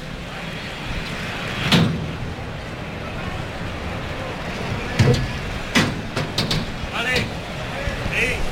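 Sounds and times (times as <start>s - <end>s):
murmur of a large crowd: 0.0s - 8.4s
heavy bullpen gate banging and rattling open: 4.6s - 7.5s
sharp knocks and thuds: 5.0s - 7.4s.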